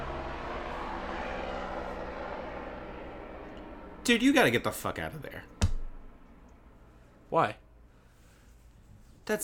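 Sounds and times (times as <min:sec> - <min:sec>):
helicopter flying overhead: 0:00.0 - 0:07.0
speech: 0:04.0 - 0:05.6, 0:07.3 - 0:07.6.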